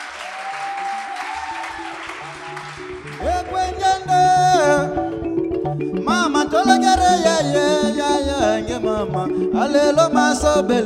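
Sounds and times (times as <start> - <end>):
crowd applauding with dense clapping: 0.0 - 5.0
traditional Congolese song played on likembe and two other instruments: 1.5 - 10.8
person singing a traditional Congolese song: 3.1 - 10.8
speech: 9.3 - 10.8.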